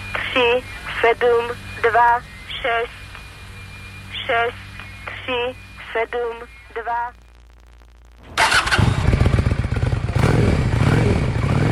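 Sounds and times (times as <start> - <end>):
speech: 0.4 - 3.0, 4.3 - 4.6, 5.3 - 7.2
Honda Shadow cruiser motorcycle engine starting: 8.4 - 11.7.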